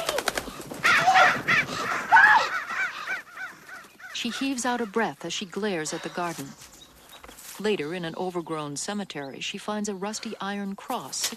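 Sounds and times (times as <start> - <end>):
several crows cawing loudly and harshly: 0.0 - 5.2
speech: 4.2 - 6.7, 7.6 - 11.3.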